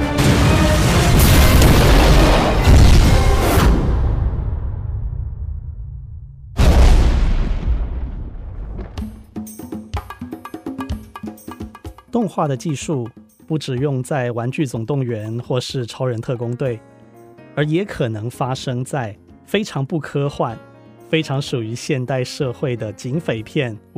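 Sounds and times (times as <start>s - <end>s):
heavy cinematic explosions with deep rumbling boom: 0.1s - 9.3s
speech: 12.2s - 16.9s, 17.6s - 23.9s.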